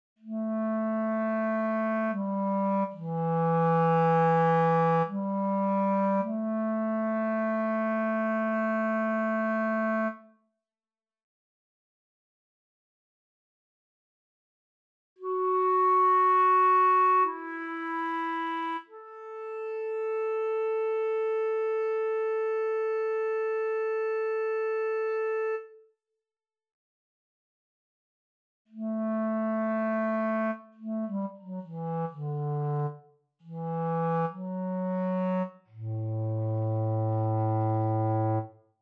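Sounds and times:
clarinet: 0:00.2 - 0:10.3, 0:15.2 - 0:25.8, 0:28.7 - 0:38.6.

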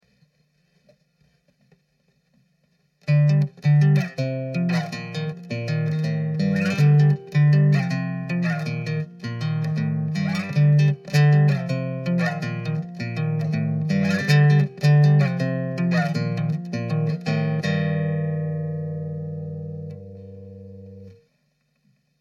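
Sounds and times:
thrash guitar riff in G minor at 160 BPM: 0:03.0 - 0:21.2.

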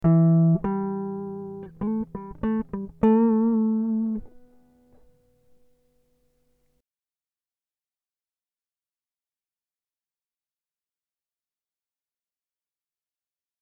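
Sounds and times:
guitar riffs in E minor: 0:00.0 - 0:06.0.

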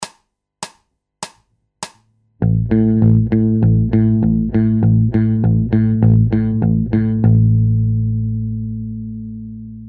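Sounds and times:
bass loops: 0:02.4 - 0:09.8.

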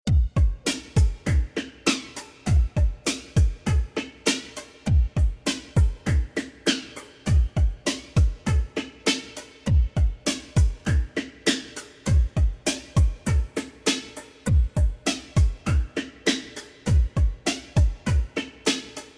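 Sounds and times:
heavily processed rhythm groove in C at 100: 0:00.0 - 0:19.1.

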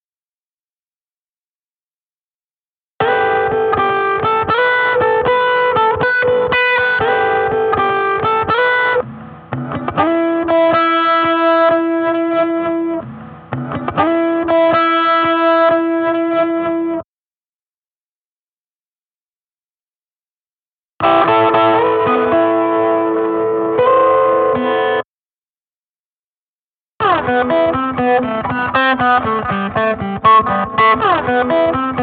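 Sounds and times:
two guitars improvising: 0:03.0 - 0:17.0, 0:21.0 - 0:25.0, 0:27.0 - 0:32.0.

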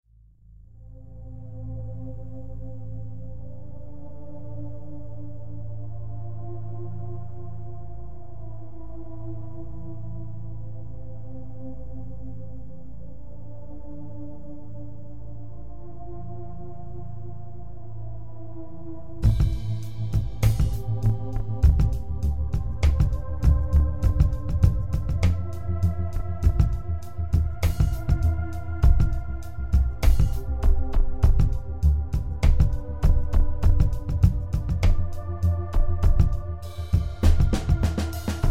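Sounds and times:
A minor groove music at 100 bpm: 0:19.2 - 0:38.4.

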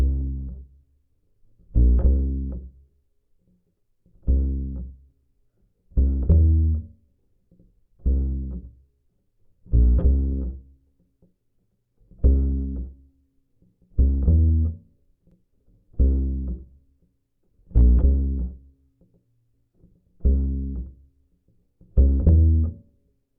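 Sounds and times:
falling acoustic bass bridge: 0:00.0 - 0:00.7, 0:01.7 - 0:02.7, 0:04.2 - 0:04.9, 0:06.0 - 0:06.9, 0:08.0 - 0:08.7, 0:09.7 - 0:10.7, 0:12.2 - 0:13.0, 0:14.0 - 0:14.8, 0:16.0 - 0:16.7, 0:17.7 - 0:18.6, 0:20.2 - 0:21.0, 0:21.9 - 0:22.8.

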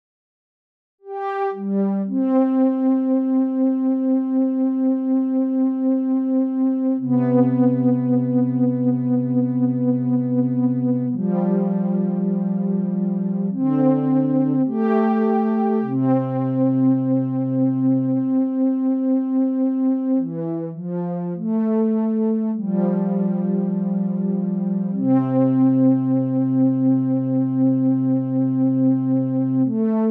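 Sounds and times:
improvised lead melody: 0:01.1 - 0:30.0.

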